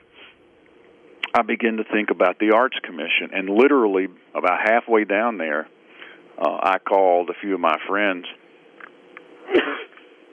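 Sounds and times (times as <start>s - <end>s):
speech: 1.3s - 5.8s, 6.4s - 8.4s
sneeze: 9.4s - 9.9s.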